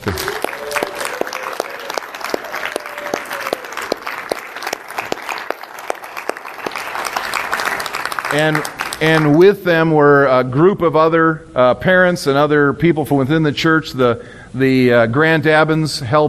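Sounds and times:
speech: 0.0 - 0.4, 8.3 - 16.2
room full of church audience applauding: 0.0 - 9.4.

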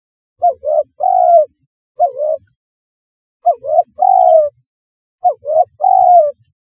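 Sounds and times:
spotted dove cooing: 0.4 - 2.6, 3.4 - 4.6, 5.2 - 6.5.

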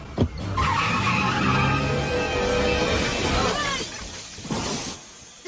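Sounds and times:
car engine roaring while driving off: 0.0 - 4.3
car tires skidding and squealing: 0.0 - 5.0.

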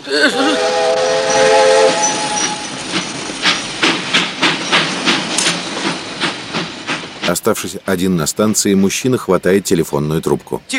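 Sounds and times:
speech: 0.0 - 0.8, 7.3 - 10.7
train horn: 0.3 - 2.7
clickety-clack of train wheels over rail joints: 1.2 - 9.0.

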